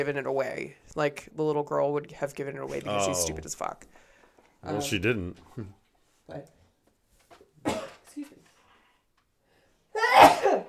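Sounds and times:
speech: 0.0s - 6.6s
person sneezing: 7.6s - 8.0s, 9.9s - 10.6s.

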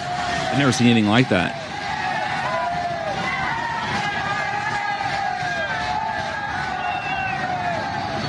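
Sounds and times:
large crowd riding freight trains cheering: 0.0s - 8.2s
speech: 0.5s - 1.6s
whoops and calls: 1.8s - 8.2s.

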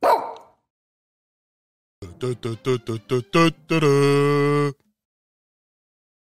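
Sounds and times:
dog yipping: 0.0s - 0.5s
dog drawn-out barking or whining: 0.0s - 0.6s
laughter: 2.0s - 4.8s
speech: 2.0s - 4.8s.

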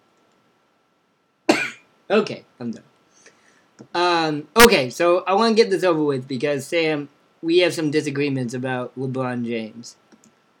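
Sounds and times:
faint hum: 0.0s - 10.5s
person coughing: 1.5s - 1.9s
speech: 2.1s - 2.9s, 3.8s - 10.0s.

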